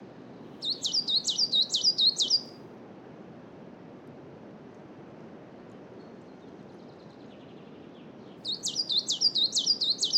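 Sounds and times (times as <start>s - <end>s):
coal tit song in a coniferous forest: 0.6s - 2.5s, 8.5s - 10.1s
wind rustling in a coniferous forest: 0.6s - 2.5s, 8.4s - 10.1s.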